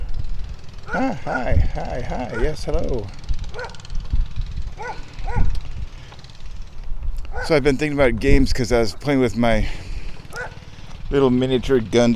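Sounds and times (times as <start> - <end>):
steady rumble of wind: 0.0 - 11.9
engine noise: 0.0 - 12.1
dog barking in a backyard: 0.8 - 1.6, 2.2 - 2.7, 3.5 - 3.8, 4.8 - 5.6, 7.3 - 7.6, 10.3 - 10.6
speech: 0.9 - 3.2, 7.4 - 9.9, 11.1 - 12.1.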